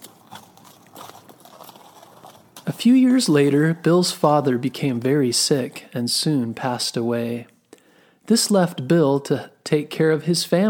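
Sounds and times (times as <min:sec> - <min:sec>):
horse hooves clip-clopping: 0:00.0 - 0:07.5
speech: 0:02.7 - 0:07.5, 0:08.3 - 0:10.6.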